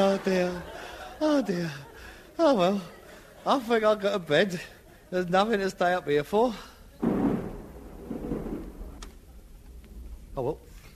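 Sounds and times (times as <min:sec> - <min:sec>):
laughter: 0:00.0 - 0:05.5
speech: 0:00.0 - 0:07.1, 0:10.4 - 0:10.7
thunder rumbling: 0:07.0 - 0:10.3.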